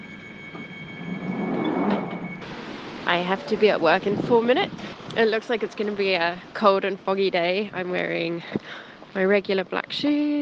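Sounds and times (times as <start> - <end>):
high whine: 0.0 - 4.6
steady rumbling underground platform noise: 0.0 - 7.9
underground train doors sliding shut: 0.5 - 3.0
speech: 3.1 - 10.4.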